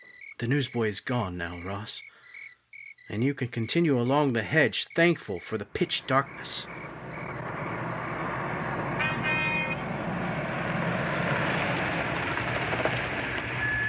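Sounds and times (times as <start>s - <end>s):
pulsing insect chirp: 0.0s - 11.9s
speech: 0.4s - 2.1s, 3.1s - 7.0s
car pulling up with low engine drone: 5.7s - 13.8s.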